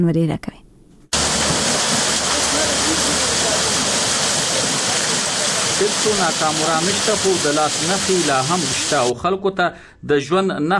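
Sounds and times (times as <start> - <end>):
speech: 0.0 - 0.6, 5.8 - 10.7
water wheel lifting water out of a canal in a village in Nurgal district: 1.2 - 9.1.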